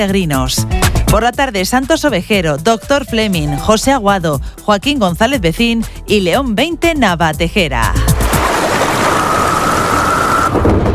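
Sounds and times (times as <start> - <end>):
speech: 0.0 - 8.1
dense rain: 8.2 - 10.9.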